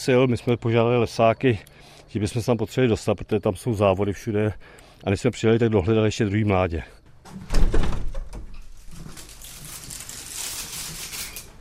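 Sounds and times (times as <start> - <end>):
faint birds: 0.0 - 7.2
speech: 0.0 - 7.8
aviary door clunking and rattling: 7.1 - 9.2.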